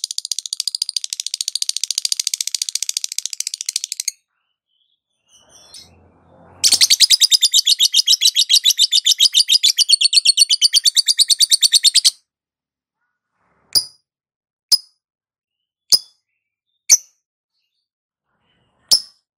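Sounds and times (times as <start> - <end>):
lovebird chattering: 0.0 - 4.2, 6.6 - 12.1.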